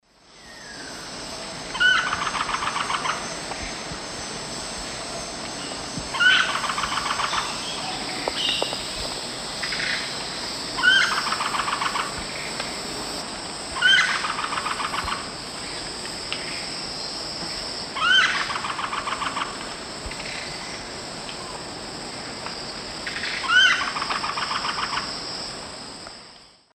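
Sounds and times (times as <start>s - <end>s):
Celeus spectabilis call in South American Eastern Lowlands: 1.7s - 3.4s, 6.1s - 8.8s, 10.8s - 12.5s, 13.8s - 15.3s, 18.0s - 20.4s, 23.0s - 25.1s.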